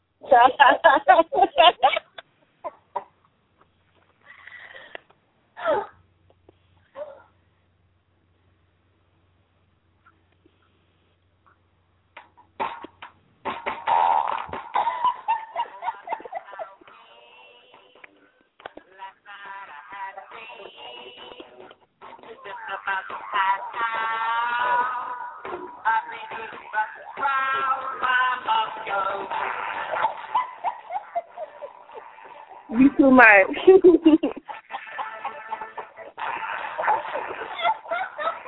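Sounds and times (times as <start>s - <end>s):
faint low hum: 0.0s - 38.4s
laughter: 0.3s - 3.1s, 14.8s - 17.0s, 28.8s - 38.4s
speech: 0.4s - 1.8s
novelty fart song through a small tinny speaker: 12.6s - 32.8s, 34.4s - 38.4s.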